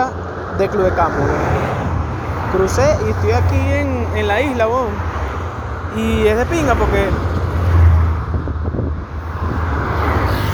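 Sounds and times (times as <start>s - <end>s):
speech: 0.0s - 1.7s, 2.5s - 5.2s, 6.0s - 7.5s
road traffic roar of vehicles passing on a busy road: 0.0s - 10.5s
wind buffeting: 0.0s - 10.5s.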